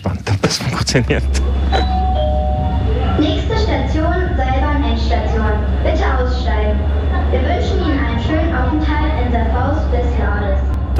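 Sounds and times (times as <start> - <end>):
underground railway station announcement over a loudspeaker: 0.0 - 10.9
steady low rumble at an underground railway terminus: 0.8 - 10.9
speech: 0.9 - 2.0, 8.7 - 10.9
underground railway station announcement chime: 1.7 - 2.8.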